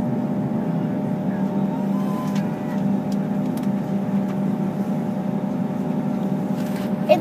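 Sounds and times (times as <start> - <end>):
airplane engine running with a loud steady low roar: 0.0 - 7.1.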